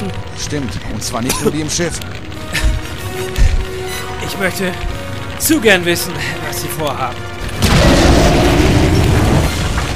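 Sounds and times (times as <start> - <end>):
speech: 0.4 - 2.3, 4.3 - 8.5
modified escape pod launching from inside a spaceship: 7.6 - 9.9.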